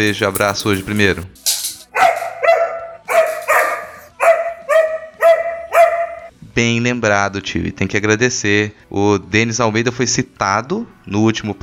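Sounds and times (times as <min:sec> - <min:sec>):
speech: 0:00.0 - 0:01.6, 0:06.6 - 0:11.6
dog barking: 0:01.9 - 0:06.3.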